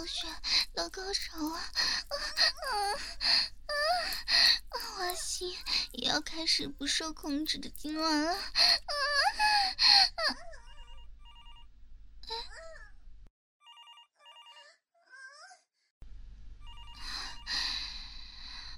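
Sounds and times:
speech: 0.1s - 3.5s, 5.4s - 9.1s
child crying: 1.4s - 5.2s, 8.3s - 10.8s, 12.3s - 12.9s, 15.0s - 15.7s
telephone ringing: 10.7s - 11.7s, 13.6s - 14.7s, 16.6s - 17.5s.

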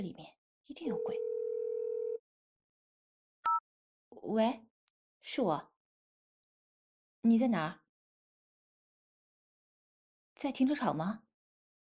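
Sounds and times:
speech: 0.0s - 1.3s, 4.2s - 5.7s, 7.2s - 7.8s, 10.4s - 11.2s
ringback tone of an unanswered phone call: 0.9s - 2.2s.

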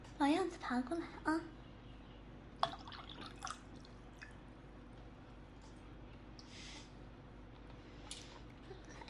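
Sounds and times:
speech: 0.2s - 1.6s
water trickling and dripping into a cup: 2.6s - 4.4s.

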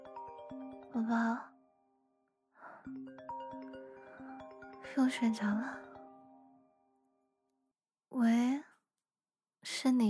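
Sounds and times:
mobile phone chiming ringtone melody: 0.0s - 1.9s, 2.8s - 6.9s
speech: 0.5s - 1.5s, 5.0s - 5.8s, 8.2s - 8.4s.

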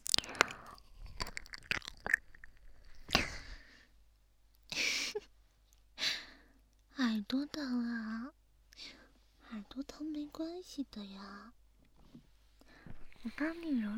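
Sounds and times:
wet biting and chewing mouth sounds: 0.0s - 3.5s
speech: 7.3s - 8.3s, 9.8s - 11.6s, 13.2s - 13.9s.

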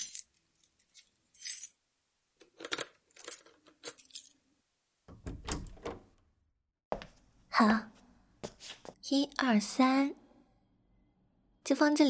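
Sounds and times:
keys jingling and scraping in a lock: 0.0s - 1.7s, 2.5s - 4.4s
door thudding and rattling as it swings open: 5.1s - 6.1s
speech: 7.6s - 7.9s, 9.1s - 10.2s, 11.7s - 12.0s.

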